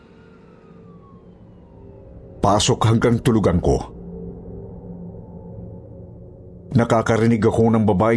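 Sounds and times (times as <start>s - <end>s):
ambulance siren wailing at night: 0.0s - 6.2s
speech: 2.4s - 4.0s, 6.8s - 8.1s.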